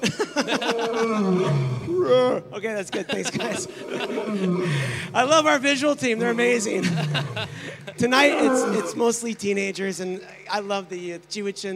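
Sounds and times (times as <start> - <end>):
laughter: 0.0 - 5.3, 6.1 - 9.0
tiger roar: 0.7 - 2.4, 3.4 - 4.9, 6.1 - 7.6, 8.2 - 9.0
speech: 2.6 - 11.7.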